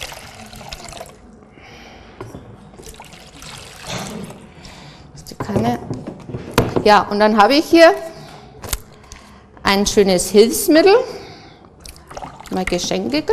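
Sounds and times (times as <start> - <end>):
water sloshing and splashing in a container: 2.8 - 4.4, 11.8 - 13.0
speech: 5.5 - 5.9, 6.8 - 8.1, 9.7 - 11.2, 12.6 - 13.3.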